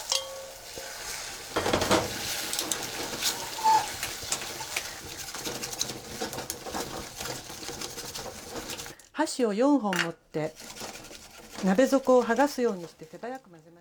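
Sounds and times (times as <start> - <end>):
chopsticks rapidly stirring eggs in a pot: 0.0 - 9.1, 9.9 - 13.6
person talking: 11.6 - 13.7.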